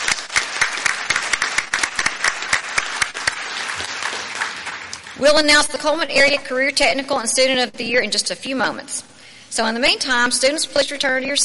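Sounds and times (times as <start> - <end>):
crowd applauding at a school awards ceremony: 0.0 - 5.2
speech: 5.2 - 11.4.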